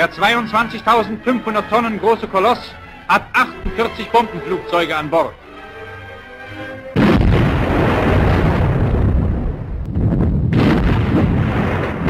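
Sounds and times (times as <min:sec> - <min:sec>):
speech: 0:00.0 - 0:05.4
warship naval guns firing broadsides in a sea battle: 0:07.0 - 0:12.0.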